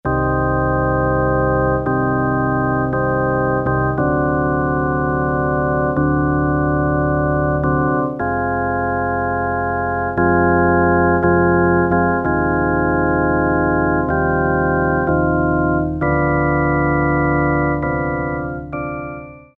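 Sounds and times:
pipe organ sound on a Yamaha PSR-300 keyboard: 0:00.0 - 0:19.5.

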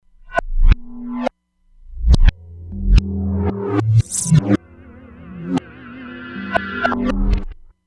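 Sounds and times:
reversed drums from E-mu Proteus-3 factory patches: 0:01.9 - 0:07.5.

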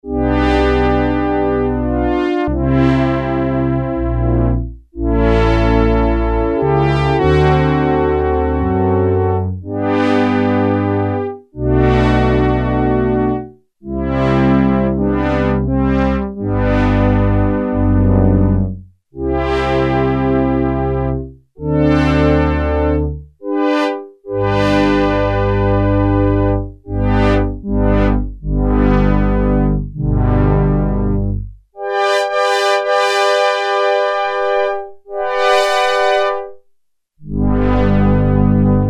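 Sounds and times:
slow orchestral brass on a Prophet-5 synthesizer: 0:00.1 - 0:15.8, 0:16.4 - 0:36.6, 0:37.2 - 0:38.8.

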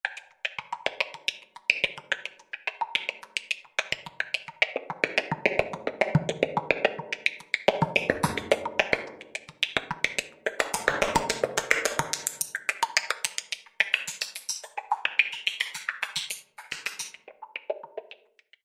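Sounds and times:
synthesizer tap dance factory patch: 0:00.1 - 0:18.6.

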